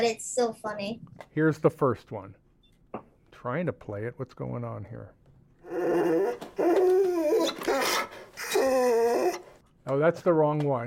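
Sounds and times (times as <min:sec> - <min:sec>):
speech: 0:00.0 - 0:06.4, 0:09.8 - 0:10.8
dog whimpering and whining: 0:05.7 - 0:09.6.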